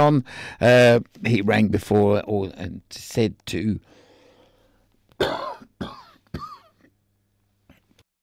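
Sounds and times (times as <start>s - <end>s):
speech: 0.0s - 4.0s, 5.2s - 6.5s
person coughing harshly: 5.2s - 6.9s.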